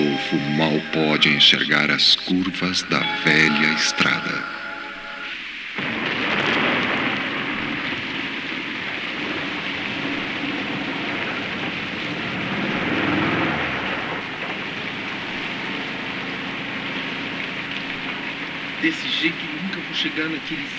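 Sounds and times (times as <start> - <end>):
dense storm rain: 0.0 - 20.7
speech: 0.3 - 4.6, 18.8 - 20.7
gusting storm wind: 5.0 - 18.8.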